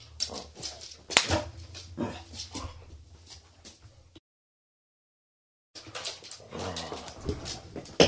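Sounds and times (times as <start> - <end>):
female dog growling low: 0.1 - 3.0, 6.4 - 7.9.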